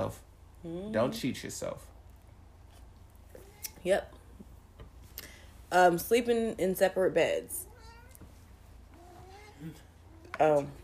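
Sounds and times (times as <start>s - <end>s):
speech: 0.0s - 1.9s, 3.8s - 4.2s, 5.7s - 7.6s, 9.6s - 9.8s, 10.4s - 10.8s
low steady hum: 0.0s - 10.8s
hungry cat meowing: 7.6s - 8.3s, 8.9s - 10.7s.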